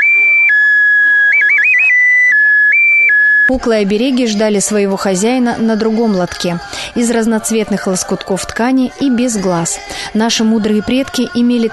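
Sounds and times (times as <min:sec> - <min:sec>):
clay bird-shaped toy whistle blown: 0:00.0 - 0:03.5
speech: 0:03.5 - 0:11.7.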